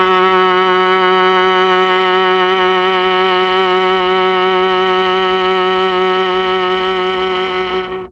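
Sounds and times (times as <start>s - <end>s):
Mellotron viola note F sharp 2: 0.0s - 8.1s.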